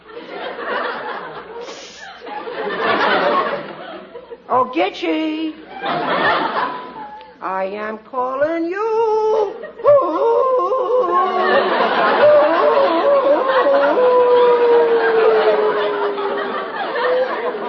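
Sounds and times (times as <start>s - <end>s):
laughter: 0.0s - 4.5s, 5.6s - 7.4s, 9.3s - 17.6s
speech: 4.6s - 6.8s, 7.4s - 9.6s, 10.2s - 13.0s
man kneeling on a rock howling like a wolf: 9.4s - 16.4s.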